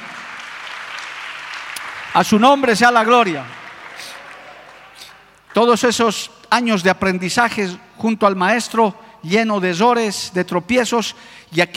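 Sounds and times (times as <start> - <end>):
audience applauding: 0.0 - 5.6
speech: 2.2 - 3.6, 5.6 - 11.7.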